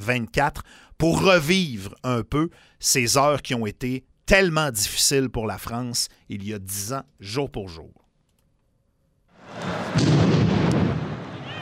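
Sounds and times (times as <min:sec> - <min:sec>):
speech: 0:00.0 - 0:08.0, 0:09.5 - 0:10.4
heavy bomb explosion near a stadium: 0:09.4 - 0:11.6.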